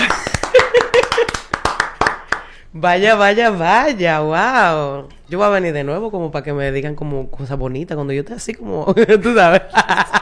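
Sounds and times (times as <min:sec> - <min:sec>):
laughter: 0:00.0 - 0:01.5, 0:08.9 - 0:10.2
small crowd applauding: 0:00.0 - 0:02.6
speech: 0:02.8 - 0:10.2.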